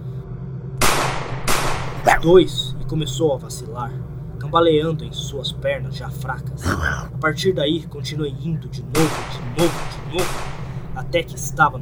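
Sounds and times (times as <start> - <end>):
low rumble: 0.0 - 11.7
pistol gunshots with tail: 0.8 - 3.1, 9.0 - 11.7
speech: 2.2 - 11.7.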